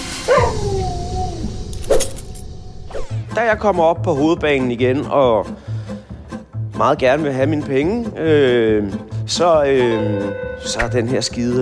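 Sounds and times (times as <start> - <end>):
dog yipping: 0.3 - 1.1
dog letting out a drawn-out wavering whine: 0.3 - 2.0
speech: 3.4 - 5.7, 6.8 - 11.6.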